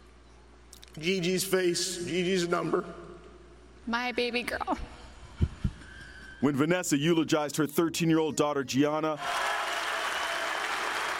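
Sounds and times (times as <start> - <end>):
speech: 1.0 - 3.1, 3.9 - 5.0, 6.4 - 9.5
crowd applause at a memorial: 9.2 - 11.1.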